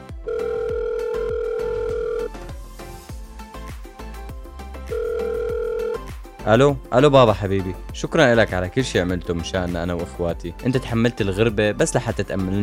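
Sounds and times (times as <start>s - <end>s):
ringback tone of an outgoing phone call: 0.0s - 2.4s, 4.9s - 6.1s
rhythmic music track with sharp percussive hits: 0.7s - 12.6s
speech: 6.4s - 12.6s.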